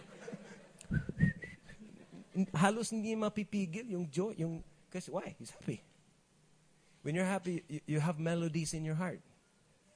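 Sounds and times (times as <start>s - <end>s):
person whistling a short tune: 0.9s - 1.8s
speech: 2.4s - 5.9s, 7.0s - 9.3s.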